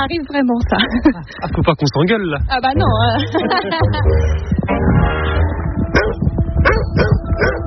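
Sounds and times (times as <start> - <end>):
speech: 0.0 - 5.4
laughter: 0.7 - 2.2, 2.8 - 4.5
dog barking with short yips: 5.9 - 7.6.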